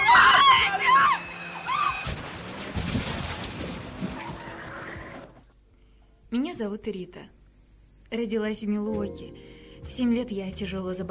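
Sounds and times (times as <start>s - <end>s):
car tires screeching: 0.0s - 5.4s
rumbling noisy aftermath of a car crash: 0.0s - 5.5s
car crash: 1.6s - 5.4s
speech: 6.6s - 7.4s, 8.1s - 11.1s.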